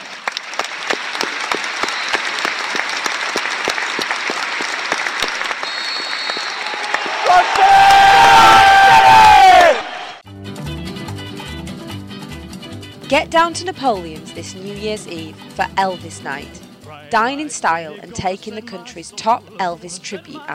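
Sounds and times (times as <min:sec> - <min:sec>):
large stadium crowd applauding in tribute: 0:00.0 - 0:10.2
stadium crowd cheering and shouting: 0:05.2 - 0:10.2
speech: 0:13.1 - 0:20.5.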